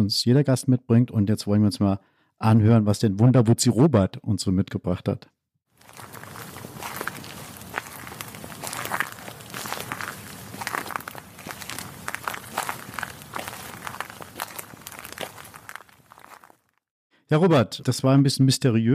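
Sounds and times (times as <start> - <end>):
speech: 0.0 - 6.2, 17.3 - 18.9
soft outdoor ambience: 5.8 - 16.5
footsteps crunching and rustling through a forest floor: 5.8 - 16.8.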